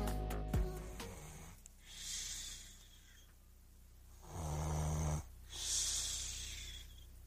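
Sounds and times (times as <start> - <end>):
sleeper with obstructive sleep apnea snoring: 0.7 - 3.2, 4.2 - 7.0
hissy wheezing intakes of breath: 0.7 - 3.4, 4.2 - 7.2.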